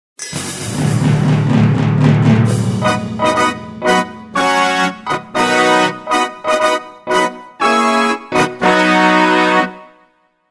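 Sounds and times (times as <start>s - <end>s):
brass fanfare: 0.2s - 10.3s.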